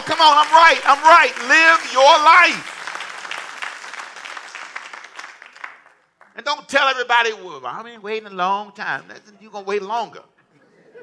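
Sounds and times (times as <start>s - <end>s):
crowd clapping: 0.0s - 6.5s
speech: 0.1s - 2.8s, 6.4s - 10.3s
laughter: 10.4s - 11.0s.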